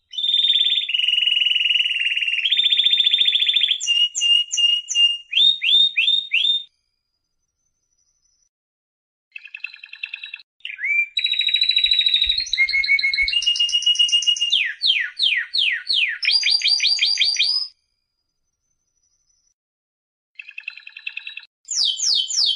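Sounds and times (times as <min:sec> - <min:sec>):
canary singing trills and rolls: 0:00.0 - 0:06.7, 0:09.4 - 0:17.7, 0:20.4 - 0:22.5.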